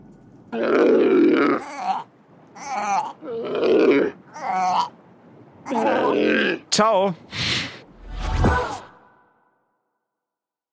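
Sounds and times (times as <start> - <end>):
speech: 0.5 - 4.9, 6.1 - 7.4
seal calling with guttural grunts and moaning barks: 0.5 - 5.0, 5.6 - 6.6.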